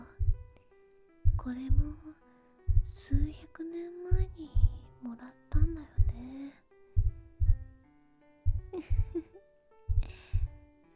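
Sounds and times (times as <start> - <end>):
heartbeat thumping: 0.0 - 0.5, 1.2 - 2.0, 2.7 - 3.4, 4.1 - 4.9, 5.6 - 6.3, 7.0 - 7.8, 8.4 - 9.2, 9.9 - 10.6
speech: 1.4 - 2.2, 2.9 - 5.4.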